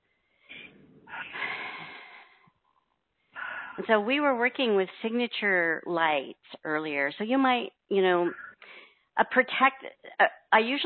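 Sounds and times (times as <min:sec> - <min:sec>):
person taking a long breath: 0:00.4 - 0:02.5, 0:03.4 - 0:03.8, 0:08.6 - 0:09.1
speech: 0:03.8 - 0:10.8.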